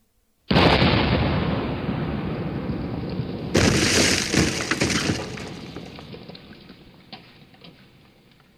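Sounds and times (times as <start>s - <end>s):
shell explosion: 0.5s - 6.2s
warship cannon shot: 0.5s - 6.2s
crackling, shattering debris: 3.6s - 6.4s.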